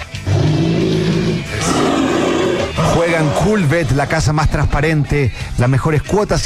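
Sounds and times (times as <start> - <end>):
animal roar: 0.0 - 4.2
speech: 3.2 - 6.4.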